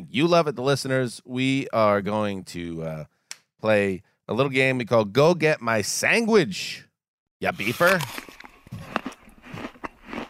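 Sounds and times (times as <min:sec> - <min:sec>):
speech: 0:00.1 - 0:08.9
crunchy bites of food: 0:07.6 - 0:10.2
wet chewing of food: 0:07.6 - 0:10.2.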